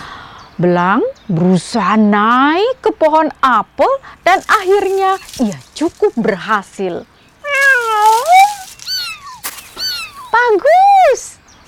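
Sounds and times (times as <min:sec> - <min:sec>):
speech: 0:00.6 - 0:07.1, 0:10.5 - 0:11.3
cat meowing: 0:07.4 - 0:11.0.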